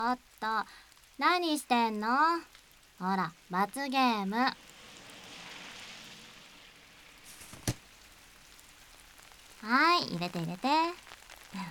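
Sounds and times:
speech: 0.0s - 4.7s, 9.6s - 11.6s
rain falling: 0.0s - 11.6s
raindrop tap: 7.2s - 11.6s.

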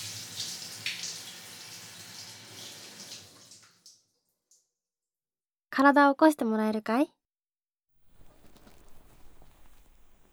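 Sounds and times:
running water rinsing off soap foam: 0.0s - 3.9s, 8.1s - 10.3s
faint water drips: 0.0s - 4.6s, 8.0s - 10.3s
speech: 5.8s - 7.2s.

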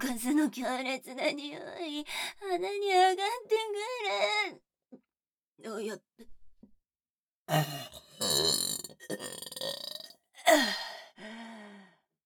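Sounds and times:
speech: 0.0s - 5.0s, 5.6s - 6.4s, 7.5s - 9.9s, 10.5s - 11.4s
crude throaty burp: 7.5s - 10.7s.

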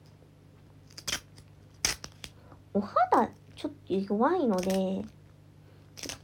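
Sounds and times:
faint steady hum: 0.0s - 6.2s
packing tape ripping off the roll: 0.8s - 2.3s, 6.0s - 6.2s
speech: 2.8s - 5.2s.

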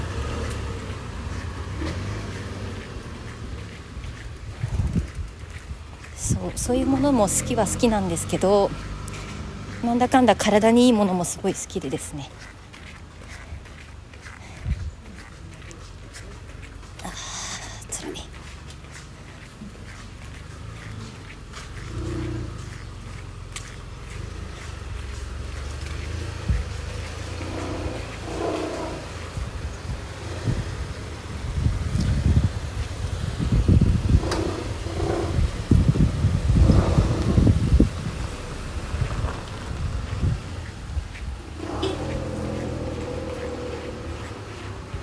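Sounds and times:
car engines rumbling as cars squeeze past each other on a very narrow road: 0.0s - 45.0s
wind buffeting the microphone: 0.9s - 10.0s, 12.4s - 15.9s, 23.9s - 45.0s
speech: 6.3s - 8.9s, 9.8s - 12.5s.

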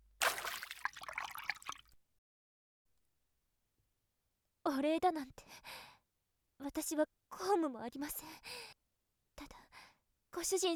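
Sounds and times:
water poured over a person to rinse them off: 0.2s - 2.0s
speech: 4.8s - 5.8s, 6.6s - 8.6s, 10.4s - 10.7s.

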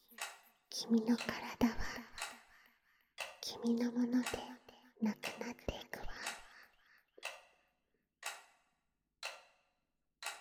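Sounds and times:
clock ticking: 0.0s - 2.5s, 3.2s - 7.6s, 8.2s - 8.6s, 9.2s - 9.6s
speech: 0.8s - 1.7s, 3.6s - 6.2s.

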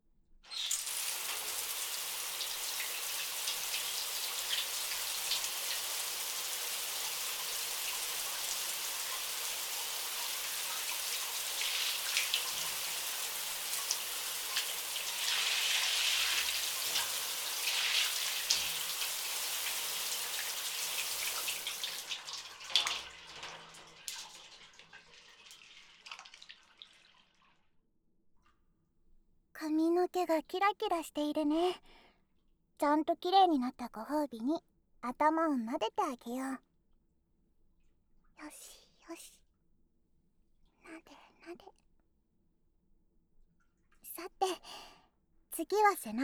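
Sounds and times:
shower water spray rinsing shampoo foam: 0.5s - 22.2s
shower water drips and splatters: 0.5s - 27.6s
speech: 30.2s - 32.0s, 32.8s - 36.7s, 38.4s - 39.4s, 45.6s - 46.2s.

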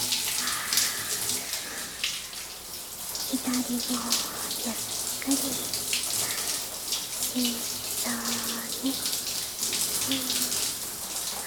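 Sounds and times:
hot water pouring: 0.0s - 11.4s
speech: 3.3s - 5.9s, 7.4s - 9.1s, 10.1s - 10.4s.

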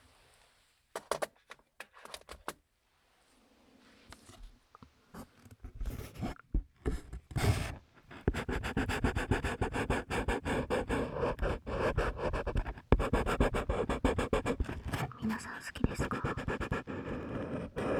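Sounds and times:
colored pencil scratching on paper while drawing: 5.7s - 17.9s.

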